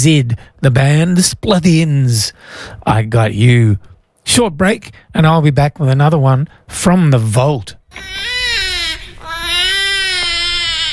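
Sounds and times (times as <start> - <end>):
speech: 0.0 - 8.3
baby crying in a loud sustained wail: 7.9 - 10.9.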